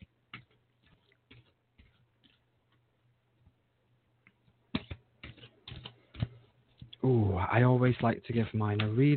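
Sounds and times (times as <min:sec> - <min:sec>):
large cards being shuffled: 0:00.0 - 0:02.8, 0:04.4 - 0:07.0
speech: 0:07.1 - 0:09.1.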